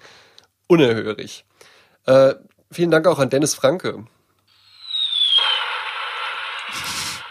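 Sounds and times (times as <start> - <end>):
speech: 0.7 - 4.2
firecracker sound effect with descending whistle and crackling hiss: 4.5 - 7.2.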